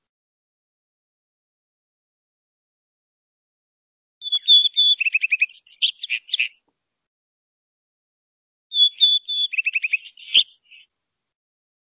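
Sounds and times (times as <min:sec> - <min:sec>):
male rufous-tailed rock thrush singing: 0:04.2 - 0:06.6, 0:08.7 - 0:10.9.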